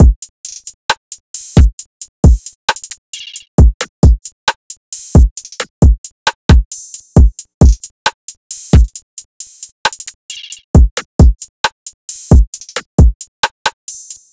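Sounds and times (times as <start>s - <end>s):
trap drum loop: 0.0s - 14.3s.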